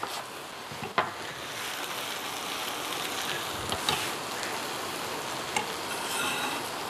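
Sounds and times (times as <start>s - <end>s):
vegetables stir-frying in oil in a pan: 0.0s - 6.8s
spatula clicking and scraping a pan: 5.8s - 6.8s.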